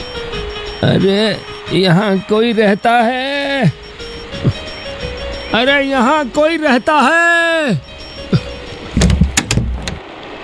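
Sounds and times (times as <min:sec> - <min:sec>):
speech: 0:00.8 - 0:03.8, 0:05.5 - 0:07.9
kitchen door creaking open: 0:07.9 - 0:10.0
mechanical clunks and latch clicks of a kitchen door: 0:08.0 - 0:10.0.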